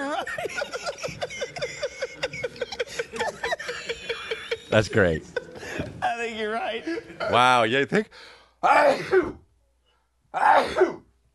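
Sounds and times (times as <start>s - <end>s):
laughter: 0.0s - 7.4s
speech: 4.7s - 5.4s, 6.7s - 9.4s
person sneezing: 8.7s - 9.5s, 10.4s - 11.1s.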